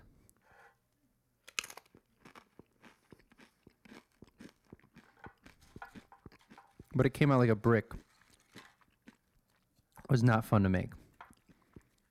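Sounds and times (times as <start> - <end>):
chewing a crunchy chip soaked in dip: 1.5 - 7.0, 7.9 - 9.8
speech: 7.0 - 8.0, 10.1 - 11.0.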